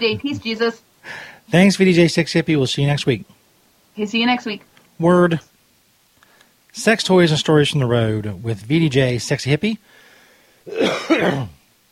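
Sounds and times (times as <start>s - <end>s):
speech: 0.0s - 3.4s, 4.0s - 5.5s, 6.8s - 10.0s, 10.6s - 11.6s
harsh throat clearing: 10.7s - 11.6s
person coughing: 10.7s - 11.6s.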